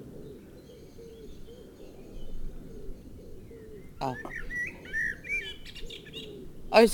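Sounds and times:
dense birdsong: 0:00.0 - 0:06.9
wood pigeons cooing: 0:00.0 - 0:06.9
blackbird singing fluting whistles: 0:03.5 - 0:06.4
speech: 0:04.0 - 0:04.4, 0:06.7 - 0:06.9.

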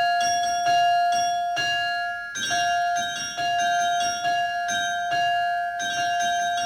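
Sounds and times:
bells ringing in a peal: 0:00.0 - 0:06.6.

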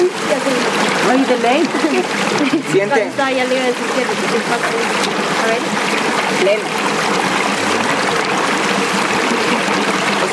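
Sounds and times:
ice-cold carbonated mineral water pouring and fizzing: 0:00.0 - 0:10.3
speech: 0:01.2 - 0:07.2.

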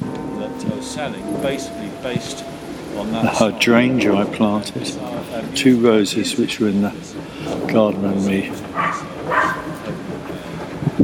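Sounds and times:
speech: 0:00.8 - 0:09.2
neighbour's dog barking in a garden: 0:08.8 - 0:09.8.

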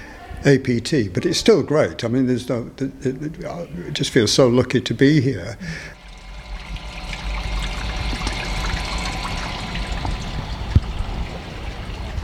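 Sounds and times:
speech: 0:00.4 - 0:06.0
creek water flowing and trickling: 0:06.0 - 0:12.2.

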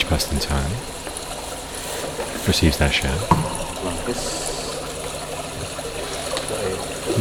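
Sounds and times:
water poured into little polystyrene cups: 0:00.0 - 0:07.1
speech: 0:00.1 - 0:01.1, 0:02.4 - 0:04.5.

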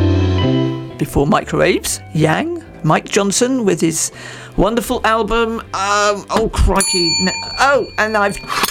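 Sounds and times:
person talking or singing: 0:01.0 - 0:08.4
speech: 0:01.0 - 0:08.6
small bell ringing: 0:06.8 - 0:08.6.

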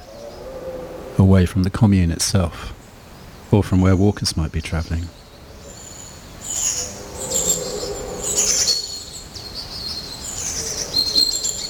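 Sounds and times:
speech: 0:01.2 - 0:02.8, 0:03.5 - 0:05.2
long-tailed tit and blue tit chirping and calling: 0:02.7 - 0:11.6.

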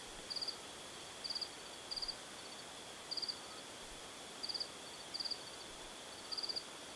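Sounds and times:
faint hiss: 0:00.0 - 0:06.9
crickets chirping at night: 0:00.3 - 0:00.6, 0:01.2 - 0:03.6, 0:04.4 - 0:06.7.

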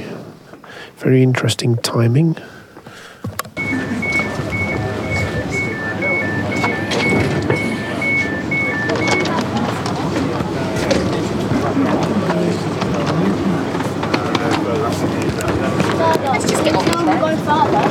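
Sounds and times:
speech: 0:00.9 - 0:02.6
repeating two-tone electronic beep at a station platform: 0:03.6 - 0:09.6
train at a station platform with steady mechanical rumble: 0:03.6 - 0:16.1
indistinct voices murmuring: 0:03.6 - 0:17.8.

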